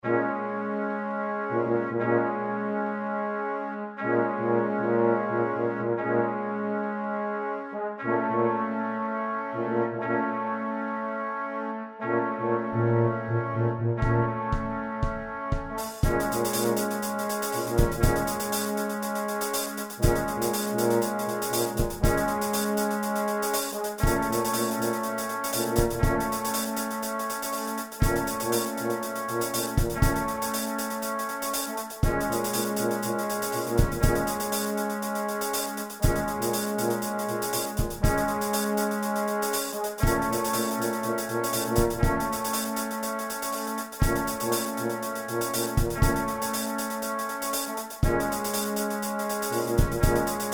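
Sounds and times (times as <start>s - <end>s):
trombone: 0.0s - 50.5s
trumpet: 0.0s - 50.5s
tuba: 0.0s - 50.5s
drum kit: 14.5s - 50.5s.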